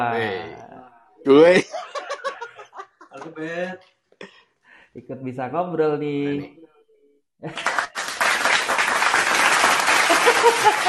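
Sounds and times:
speech: 1.2s - 2.1s, 3.2s - 4.0s, 5.0s - 6.7s, 7.4s - 7.9s, 10.4s - 10.8s
laughter: 1.6s - 3.2s, 9.9s - 10.8s
applause sound effect set off by accident in an online voice chat: 7.5s - 10.8s.

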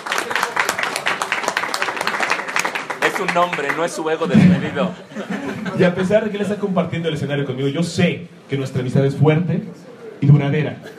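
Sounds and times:
audience applauding a guest at a live stage show: 0.0s - 4.2s
speech: 3.2s - 10.9s
laughter: 3.7s - 6.6s.

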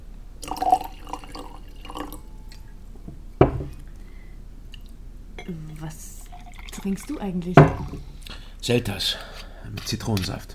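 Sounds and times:
wine pouring into a glass: 0.4s - 2.6s, 5.7s - 8.0s
speech: 6.8s - 10.5s.

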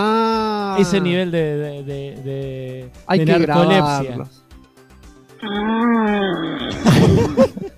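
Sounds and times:
speech: 0.8s - 4.4s, 5.4s - 7.7s
voice imitating snoring: 5.4s - 7.2s
laughter: 6.7s - 7.7s.

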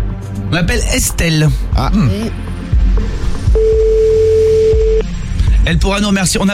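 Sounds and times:
low rumbling background: 0.0s - 6.5s
speech: 0.5s - 3.2s, 5.0s - 6.5s
telephone busy signal: 3.6s - 5.0s.

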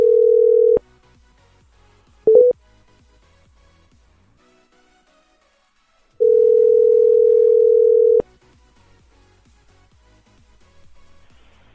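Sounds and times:
telephone call tone on a redialled number: 0.0s - 0.8s, 2.3s - 2.6s, 6.2s - 8.2s.

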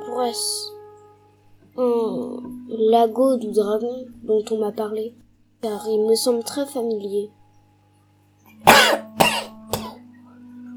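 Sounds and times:
speech: 0.2s - 0.8s, 1.8s - 7.4s
person coughing: 8.7s - 10.0s.

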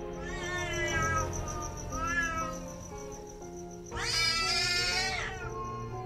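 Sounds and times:
startled black cat meowing and yowling: 0.2s - 2.7s, 3.9s - 6.0s.

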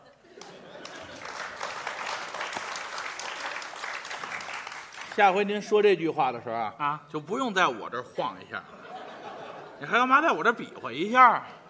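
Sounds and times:
laughter: 0.0s - 2.1s, 8.5s - 10.8s
audience applause: 0.4s - 5.4s
speech: 5.2s - 8.8s, 9.8s - 11.6s.

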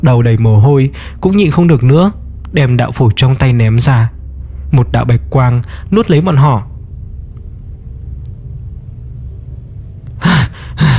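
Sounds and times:
speech: 0.0s - 6.7s
person gasping and panting while jolting upright: 10.2s - 10.9s.

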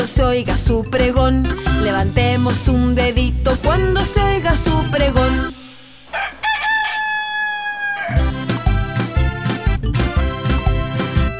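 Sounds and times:
speech: 0.0s - 5.6s
lively band music with a steady beat: 0.0s - 11.3s
rooster crowing in a children's song: 6.0s - 8.5s.

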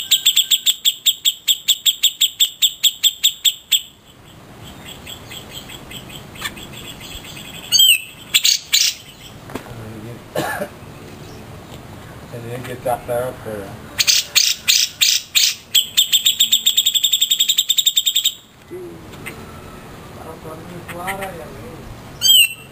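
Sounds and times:
grey-cheeked bulbul song: 0.0s - 9.4s, 14.0s - 20.1s, 22.1s - 22.7s
speech: 12.7s - 13.9s.

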